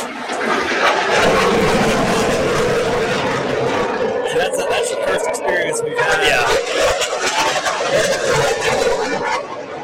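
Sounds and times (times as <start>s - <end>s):
jet aircraft flying low overhead: 0.0s - 9.8s.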